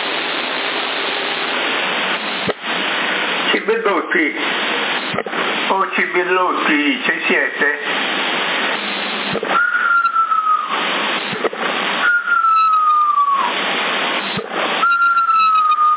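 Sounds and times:
CB radio hiss and static: 0.0 - 15.9
speech: 3.6 - 8.1
person whistling over a CB radio: 9.5 - 10.8, 12.0 - 13.6, 14.8 - 15.9.

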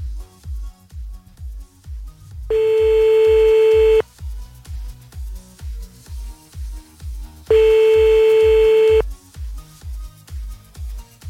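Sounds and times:
telephone busy signal beeps when calling back: 2.5 - 4.0, 7.5 - 9.0.

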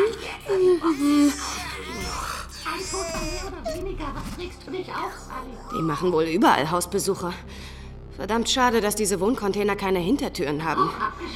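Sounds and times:
speech: 0.5 - 11.3
alien baby creature whimpering and babbling, radio drama effect: 0.8 - 4.0.

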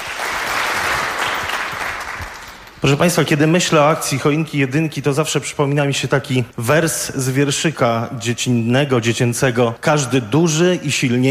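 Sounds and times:
audience applauding at a charity event: 0.0 - 2.8
speech: 2.8 - 11.2.

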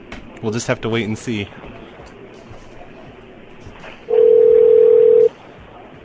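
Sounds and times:
speech: 0.4 - 2.2
electronic ringing tone of a call to a cell phone: 4.1 - 5.3.

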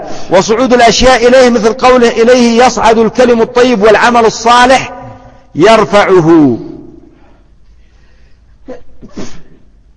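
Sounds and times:
speech: 0.3 - 4.9, 5.5 - 6.7
person with a head cold sneezing: 8.6 - 9.7.

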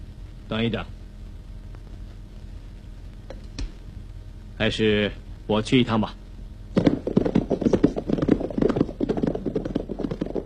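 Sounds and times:
speech: 0.5 - 1.0, 4.6 - 6.2
horse hooves clip-clopping as riders travel on horseback: 6.8 - 10.4.

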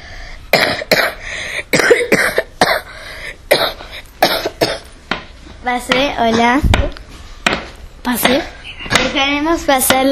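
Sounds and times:
old, very small, wrinkled man coughing in harsh, rough bursts: 0.5 - 4.9
speech: 5.7 - 7.0, 8.0 - 10.0.

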